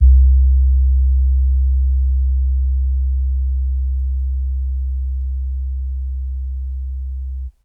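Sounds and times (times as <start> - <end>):
synth bass: 0.0 - 7.5.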